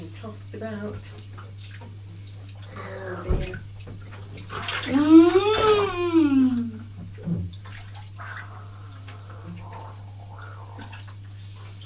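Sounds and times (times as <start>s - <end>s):
water running into a bath during bathing: 0.0s - 11.8s
speech: 0.2s - 2.0s, 2.8s - 6.6s
long voice-like tone: 4.9s - 6.8s.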